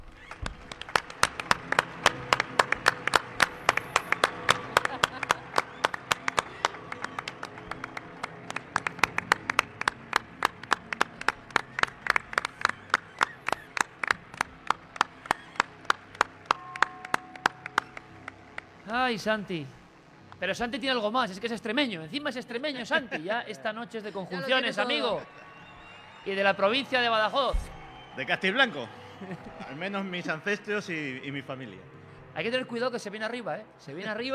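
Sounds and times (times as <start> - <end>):
audience applauding a newly introduced guest: 0.0 - 19.4, 24.5 - 31.1
laughter: 4.0 - 7.9, 22.7 - 25.6, 28.7 - 30.6
speech: 19.1 - 19.8, 20.4 - 25.4, 26.2 - 34.3.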